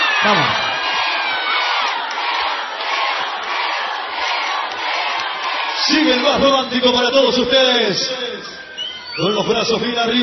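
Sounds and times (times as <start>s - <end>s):
scattered whoops from crowd: 0.0s - 1.7s, 8.3s - 9.4s
large concert crowd cheering and shouting: 0.0s - 10.2s
speech: 0.2s - 0.7s, 5.9s - 8.6s, 9.2s - 10.2s.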